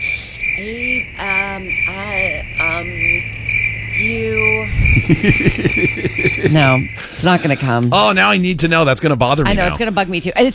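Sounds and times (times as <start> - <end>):
crickets chirping: 0.0 - 8.9
speech: 0.6 - 3.4, 4.0 - 10.5
person humming: 4.8 - 6.9
laughter: 4.9 - 7.9.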